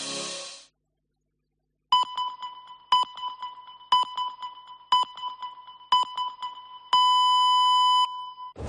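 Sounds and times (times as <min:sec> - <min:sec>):
radio electronic time signal beep: 0:02.0 - 0:08.6.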